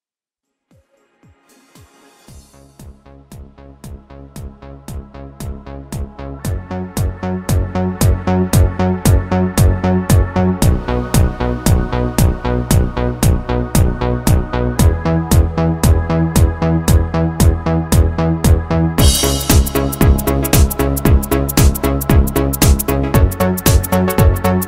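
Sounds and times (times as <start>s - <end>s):
1980s 1990s Italo disco instrumental music on Roland keyboard: 0.7s - 24.6s.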